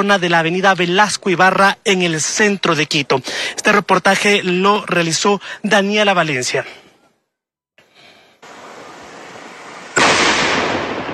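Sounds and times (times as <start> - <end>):
speech: 0.0 - 6.8
steady hiss: 0.0 - 7.1, 7.8 - 11.1
controlled detonation of military explosive device: 9.9 - 11.1.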